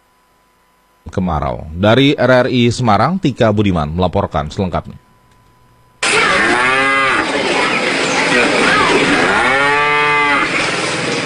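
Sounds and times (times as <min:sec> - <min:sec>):
speech: 0:01.1 - 0:05.0
dairy cows mooing in Central Java Indonesia: 0:06.0 - 0:11.0.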